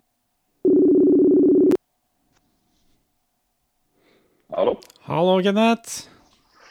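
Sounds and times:
telephone ringback tone while placing a call: 0:00.6 - 0:01.8
speech: 0:04.6 - 0:06.1.

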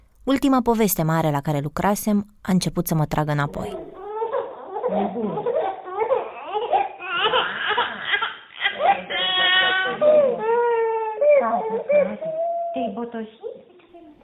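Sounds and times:
speech: 0:00.2 - 0:03.9, 0:04.9 - 0:05.5, 0:13.0 - 0:13.7
three-and-a-half-month-old baby girl crying after waking from sleep: 0:03.7 - 0:14.1.

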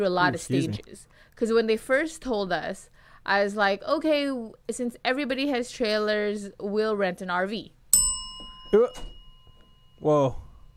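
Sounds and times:
speech: 0:00.0 - 0:07.8, 0:08.7 - 0:09.1, 0:10.0 - 0:10.4
struck bell ringing with a high metallic tone: 0:07.9 - 0:10.7.

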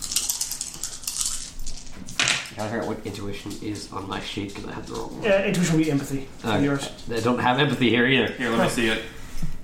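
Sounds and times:
difficulty dice rattling across a hard tabletop: 0:00.0 - 0:02.5
speech: 0:02.6 - 0:09.2.

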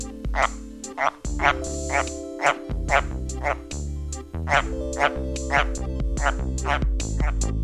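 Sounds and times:
White's tree frog croaking calls: 0:00.3 - 0:07.4.

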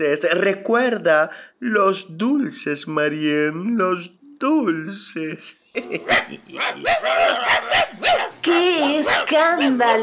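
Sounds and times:
speech: 0:00.0 - 0:10.0
laughter: 0:05.8 - 0:07.8
several dogs barking loudly and excitedly outside: 0:05.9 - 0:10.0
dogs yipping and whining: 0:06.1 - 0:08.4.

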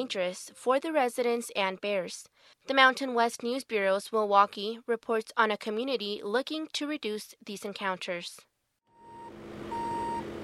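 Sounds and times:
speech: 0:00.0 - 0:08.5
semi-truck reversing alarm beeps during unloading: 0:08.9 - 0:10.4
semi-truck low diesel engine rumble: 0:09.0 - 0:10.4.

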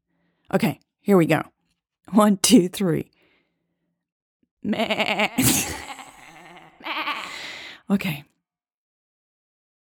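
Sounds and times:
speech: 0:00.5 - 0:01.5, 0:02.1 - 0:03.2, 0:04.6 - 0:06.0, 0:07.9 - 0:08.3
laughter: 0:04.7 - 0:07.4
person imitating a goat bleat: 0:04.7 - 0:07.5.

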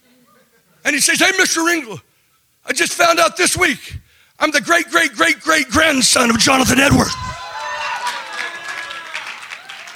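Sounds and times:
speech: 0:00.9 - 0:02.1, 0:02.7 - 0:07.3
audience clapping: 0:07.4 - 0:09.9.

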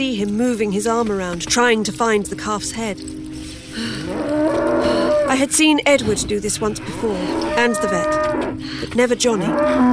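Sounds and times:
speech: 0:00.0 - 0:03.2, 0:03.8 - 0:09.9
heifer mooing low: 0:03.9 - 0:05.7, 0:06.5 - 0:09.9.

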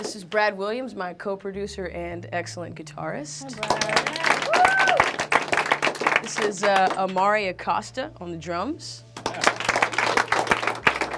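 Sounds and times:
speech: 0:00.1 - 0:04.9, 0:06.2 - 0:09.5
audience clapping: 0:03.5 - 0:07.4, 0:09.2 - 0:11.1.

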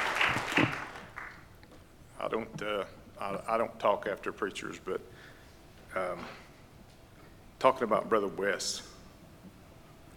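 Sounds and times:
congregation clapping: 0:00.0 - 0:01.5
speech: 0:02.3 - 0:05.3, 0:06.0 - 0:06.4, 0:07.6 - 0:08.9.

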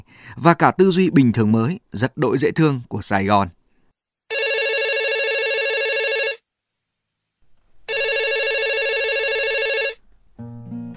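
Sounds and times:
speech: 0:00.2 - 0:03.6
telephone ringback tones of a call being placed to a rice-stall owner in Saigon, Vietnam: 0:04.3 - 0:06.4, 0:07.9 - 0:10.0.

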